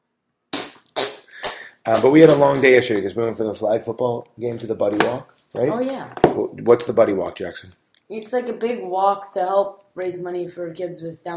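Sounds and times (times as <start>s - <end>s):
sputtering fart bursts: 0.5s - 2.9s
speech: 1.8s - 11.3s.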